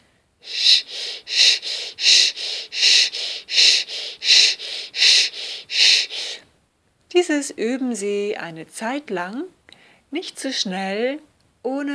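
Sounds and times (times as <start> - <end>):
breathing in and out through a held sh mouth position: 0.4 - 6.4, 9.7 - 10.1
speech: 7.2 - 11.9.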